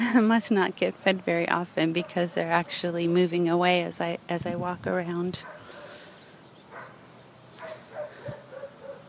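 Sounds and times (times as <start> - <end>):
steady outdoor hiss: 0.0 - 9.0
speech: 0.1 - 5.6
dog barking in a backyard: 5.4 - 6.0, 6.7 - 7.0, 7.6 - 9.0.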